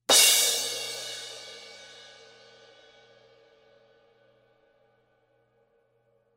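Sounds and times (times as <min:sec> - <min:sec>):
A Avedis crash cymbal: 0:00.1 - 0:04.2.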